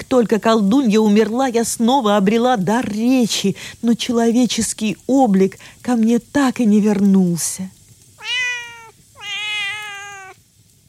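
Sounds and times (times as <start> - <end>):
low hum: 0.0 - 10.8
speech: 0.1 - 7.8
cat meowing: 8.2 - 10.4.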